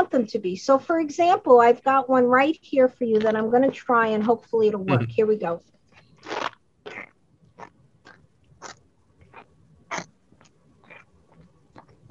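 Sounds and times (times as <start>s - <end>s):
speech: 0.0s - 6.4s
box of cornstarch squeezed as foley prop: 5.9s - 12.0s.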